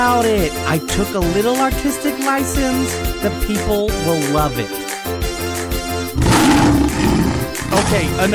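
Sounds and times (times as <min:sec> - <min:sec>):
speech: 0:00.0 - 0:05.2, 0:07.8 - 0:08.3
lion roaring: 0:06.1 - 0:08.3.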